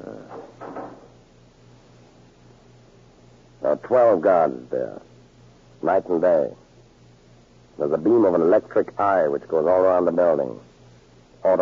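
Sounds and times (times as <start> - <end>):
low thud of a heavy fire door: 0.3 - 1.1
speech: 3.6 - 5.1, 5.8 - 6.6, 7.8 - 10.7.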